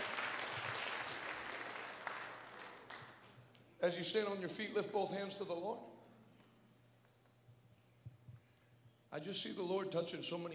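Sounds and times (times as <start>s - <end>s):
large audience applauding: 0.0s - 3.2s
speech: 3.8s - 6.0s, 9.2s - 10.5s.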